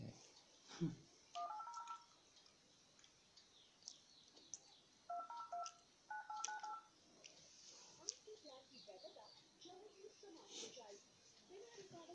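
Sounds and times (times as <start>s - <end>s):
faint chirps: 0.4s - 12.1s
telephone keypad tones: 1.4s - 2.1s, 5.1s - 6.9s.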